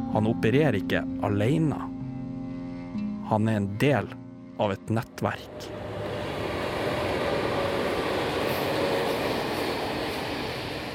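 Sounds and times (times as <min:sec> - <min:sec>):
speech: 0:00.1 - 0:01.9, 0:03.3 - 0:05.8
train rumbling on rails: 0:05.3 - 0:10.9.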